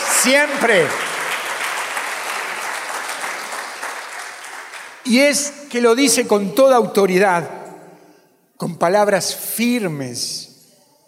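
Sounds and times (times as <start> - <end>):
congregation applauding loudly: 0.0 - 5.1
speech: 0.2 - 1.1, 5.0 - 7.6, 8.6 - 10.5.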